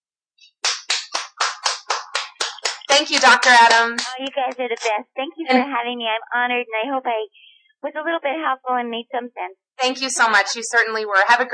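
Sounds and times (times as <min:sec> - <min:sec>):
conference call audience clapping: 0:00.5 - 0:04.9
speech: 0:03.0 - 0:11.5.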